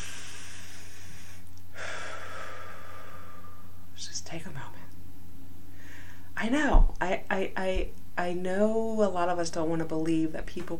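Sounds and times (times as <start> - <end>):
deep breath inhaled: 0.0 - 3.7, 5.7 - 6.3
speech: 6.4 - 10.7.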